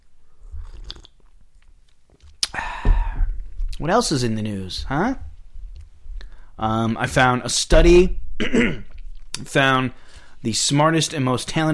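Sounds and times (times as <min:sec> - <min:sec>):
soft wet mouth noises: 0:00.4 - 0:03.8
louder slurp of tea: 0:00.5 - 0:01.3
person sipping tea: 0:00.5 - 0:02.8
speech: 0:03.8 - 0:05.3, 0:06.6 - 0:11.7.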